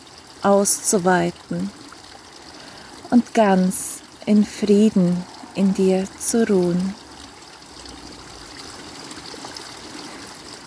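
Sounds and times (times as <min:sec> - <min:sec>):
stream water flowing: 0:00.0 - 0:10.6
speech: 0:00.4 - 0:01.8, 0:03.1 - 0:07.0.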